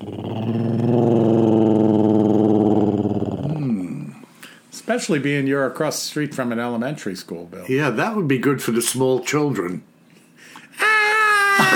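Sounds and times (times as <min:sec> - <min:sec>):
deep rough growl of a werewolf-like creature: 0:00.0 - 0:04.2
low snarl: 0:00.0 - 0:04.2
speech: 0:05.0 - 0:10.5.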